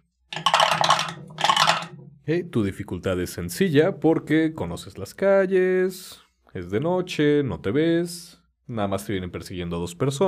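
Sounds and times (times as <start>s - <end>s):
several small plastic ten-sided dice clattering against a hard surface: 0.3s - 2.0s
speech: 2.3s - 10.2s.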